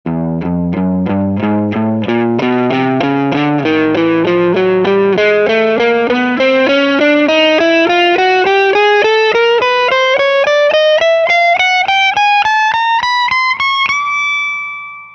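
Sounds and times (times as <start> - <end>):
electric guitar: 0.1 - 15.1.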